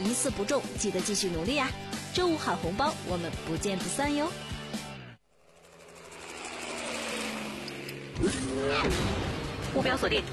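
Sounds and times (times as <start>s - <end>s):
speech: 0.1s - 4.5s, 9.8s - 10.3s
sports car with all-aluminium V8 petrol engine and all-wheel drive droning: 5.2s - 10.3s.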